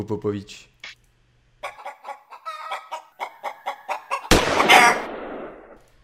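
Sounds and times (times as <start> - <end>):
speech: 0.0 - 0.7
hen clucking in a jingle: 1.6 - 5.0
gunshot shooting a hen: 4.3 - 5.9.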